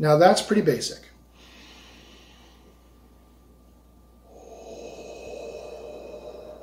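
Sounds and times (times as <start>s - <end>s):
speech: 0.0s - 1.1s
deep breath in and out through the mouth: 1.3s - 3.5s, 4.2s - 6.6s.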